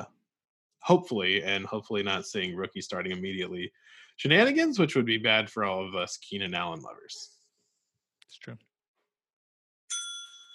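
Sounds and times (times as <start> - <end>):
speech: 0.8 - 7.4, 8.3 - 8.7
bright metallic bell ding: 9.9 - 10.5.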